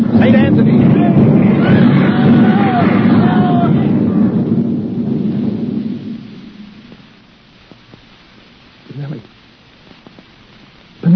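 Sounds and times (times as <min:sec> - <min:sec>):
faint voices: 0:00.0 - 0:04.9
305 artillery shell explosion: 0:00.0 - 0:07.3.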